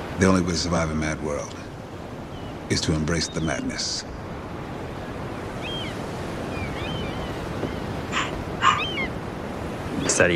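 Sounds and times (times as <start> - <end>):
steady rushing noise: 0.0 - 10.3
speech: 0.2 - 1.7, 2.7 - 4.2, 10.1 - 10.3
dog barking: 8.1 - 9.0.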